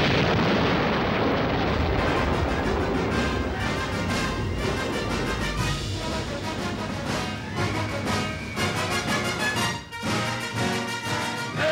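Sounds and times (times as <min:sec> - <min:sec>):
atomic bomb explosion roar: 0:00.0 - 0:11.6.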